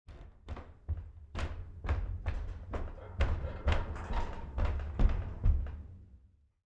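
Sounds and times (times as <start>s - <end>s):
footsteps walking on wood floor heard from basement below: 0.1s - 6.0s
basement pipes movement: 2.0s - 5.8s.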